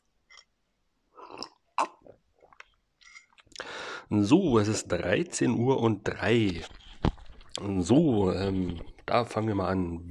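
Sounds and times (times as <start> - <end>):
slurping and swallowing coffee from a mug: 1.2 - 3.6
speech: 4.1 - 6.8, 7.6 - 10.1.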